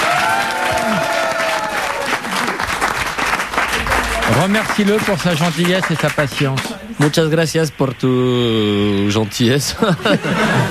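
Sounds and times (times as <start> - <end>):
crowd applauding: 0.0 - 7.3
speech: 4.4 - 10.6
laughter: 9.7 - 10.6.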